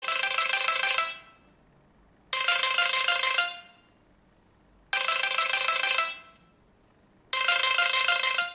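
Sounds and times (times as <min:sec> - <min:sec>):
Asus ringtone: 0:00.0 - 0:01.6, 0:02.3 - 0:04.0, 0:04.9 - 0:06.6, 0:07.3 - 0:08.5.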